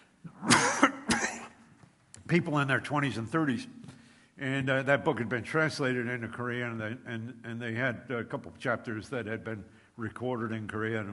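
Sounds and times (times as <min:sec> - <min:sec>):
raspy coughs from one person: 0:00.4 - 0:01.6
speech: 0:02.3 - 0:03.8, 0:04.4 - 0:11.1.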